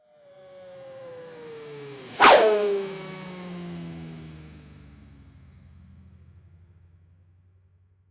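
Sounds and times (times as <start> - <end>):
speed whoosh: 2.2 - 3.1.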